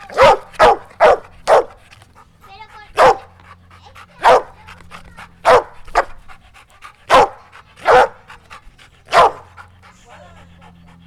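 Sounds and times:
tied dog barking: 0.0 - 1.8, 2.8 - 3.4, 4.0 - 6.2, 7.1 - 8.4, 9.1 - 10.3.

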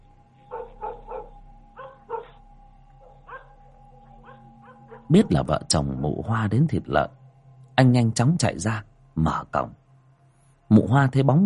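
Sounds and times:
yellow dog barking through a fence: 0.5 - 2.4, 3.0 - 3.6, 4.2 - 5.3
speech: 5.1 - 7.2, 7.8 - 9.8, 10.8 - 11.4.

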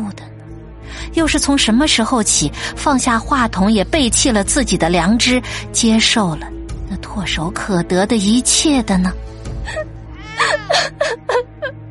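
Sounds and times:
speech: 1.1 - 10.9
young woman crying heard through a phone: 9.6 - 11.8.

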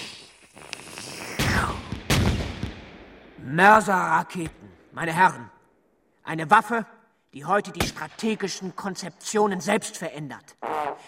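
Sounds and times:
volley of gunfire from the undergrowth: 1.4 - 3.5, 7.8 - 8.7
speech: 3.6 - 5.6, 6.3 - 11.0.

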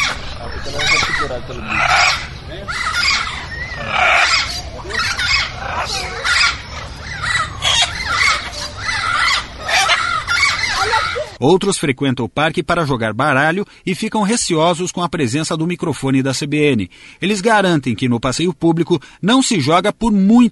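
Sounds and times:
caged birds squawking and screeching at a city park: 0.0 - 11.4
caged small mammals chattering at a city park: 0.0 - 11.4
speech: 0.7 - 2.0, 11.4 - 20.5.

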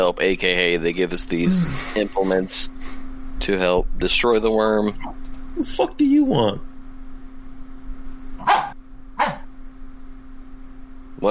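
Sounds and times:
speech: 0.0 - 6.7
faint steady electrical hum: 0.0 - 11.3
pet dog barking: 8.4 - 9.5.

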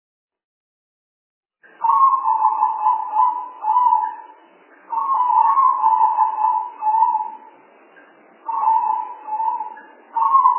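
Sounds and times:
spotted dove cooing as a lure call: 1.8 - 4.3, 4.9 - 7.5, 8.4 - 10.5.

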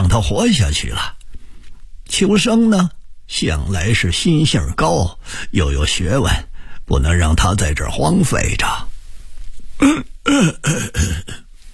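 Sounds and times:
speech: 0.1 - 1.2, 2.1 - 8.9, 9.8 - 11.4
elderly man clearing his throat: 9.8 - 11.5
elderly man coughing: 9.8 - 11.5.

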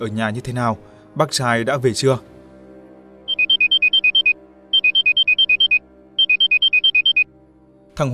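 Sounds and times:
speech: 0.0 - 2.3, 8.0 - 8.1
phone ringing with rapid electronic beeps during a call home: 3.3 - 7.3.

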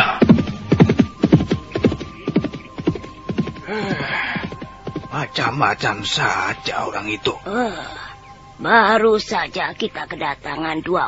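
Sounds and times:
horse hooves galloping: 0.0 - 6.8
faint steady hum: 0.1 - 11.0
speech: 5.2 - 8.0, 8.6 - 11.0.

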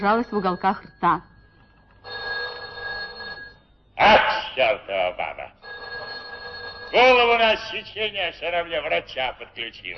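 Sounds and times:
speech: 0.0 - 1.3, 4.0 - 5.6, 6.9 - 9.9
telephone bell ringing in a workplace: 0.0 - 4.2, 5.6 - 7.9.

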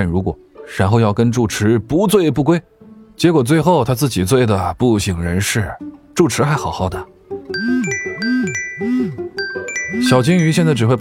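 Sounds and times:
speech: 0.0 - 7.1, 10.0 - 10.9
mobile phone ringing inside a jeans pocket: 7.5 - 10.9.

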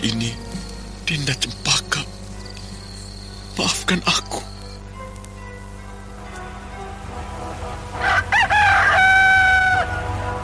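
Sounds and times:
speech: 1.1 - 1.7, 3.6 - 4.5
rooster crowing at dawn: 8.0 - 10.1.

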